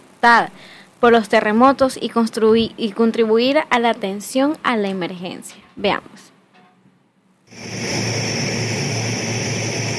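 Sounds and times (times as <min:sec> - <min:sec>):
speech: 0:00.2 - 0:06.3
Ecuadorian Air Force Hercules C-130 military transport aircraft engine drone arriving at Guayaquil: 0:07.5 - 0:09.9.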